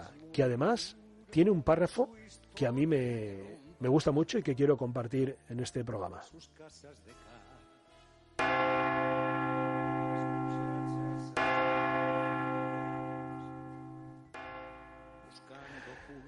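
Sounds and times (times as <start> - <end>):
speech: 0.4 - 7.4
church bell tolling: 8.4 - 16.0.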